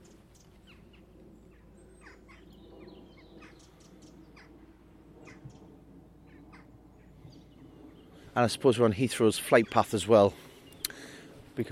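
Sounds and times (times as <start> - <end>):
steady low rumble of noise: 0.0 - 11.6
several crows cawing outdoors: 2.0 - 2.5, 3.2 - 4.6, 5.2 - 5.6, 6.2 - 7.2
speech: 8.4 - 10.4.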